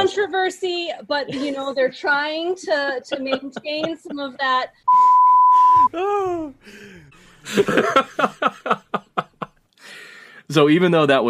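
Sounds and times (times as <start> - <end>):
speech: 0.0 - 9.3, 10.5 - 11.2
rhythmic laughter: 1.3 - 4.7, 7.1 - 9.6
censor bleep tone: 4.9 - 5.9.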